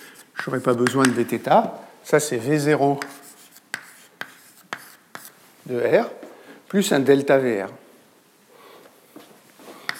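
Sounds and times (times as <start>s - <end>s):
speech: 0.4s - 3.2s, 5.7s - 7.8s
marker or chalk strokes on a board: 3.0s - 5.4s.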